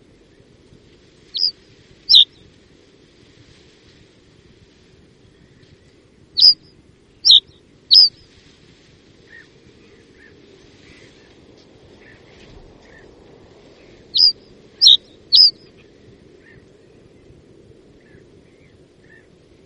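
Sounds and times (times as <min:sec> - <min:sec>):
Reed bunting giving sharp high downslurred chirps: 0:01.3 - 0:02.4, 0:06.4 - 0:08.2, 0:13.8 - 0:16.6.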